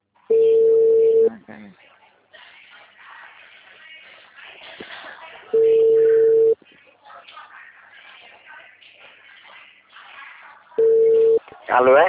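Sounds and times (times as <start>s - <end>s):
telephone busy tone after a dropped call: 0.3s - 1.3s, 5.5s - 6.6s, 10.8s - 11.4s
faint voices murmuring: 1.3s - 12.0s
speech: 11.8s - 12.0s.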